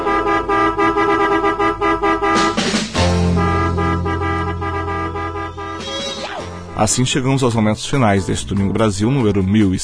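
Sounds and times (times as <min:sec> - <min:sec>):
car horn honking: 0:00.0 - 0:06.8
speech: 0:06.8 - 0:09.8.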